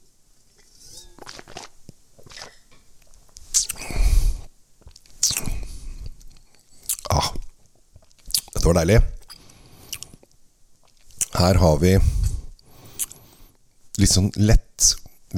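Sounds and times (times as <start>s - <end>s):
noisy airy slurps of Riesling wine being sipped and tasted: 1.2s - 2.7s, 3.5s - 4.5s
quieter wet mouth sounds, smacks and soft clicks: 1.2s - 2.7s, 3.4s - 11.4s, 12.0s - 13.3s
speech: 8.7s - 9.2s, 11.4s - 12.2s, 14.1s - 15.3s.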